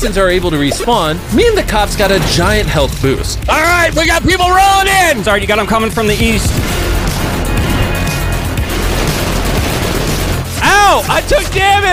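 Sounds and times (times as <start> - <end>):
speech: 0.0 - 7.4, 10.9 - 11.9
video game gunfire in a shootout against police: 6.2 - 11.6.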